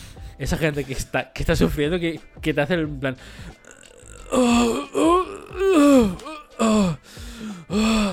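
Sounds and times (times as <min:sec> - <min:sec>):
breathing: 0:00.0 - 0:00.4, 0:03.2 - 0:03.6, 0:07.0 - 0:07.9
speech: 0:00.4 - 0:08.1
person imitating straining on the toilet with groaning grunts: 0:03.6 - 0:08.1.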